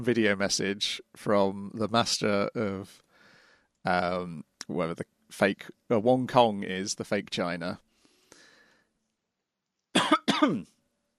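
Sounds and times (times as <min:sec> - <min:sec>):
speech: 0:00.0 - 0:03.0, 0:03.8 - 0:07.8, 0:10.4 - 0:10.8
person coughing from a Hobnob biscuit crumb in the throat: 0:10.0 - 0:10.7.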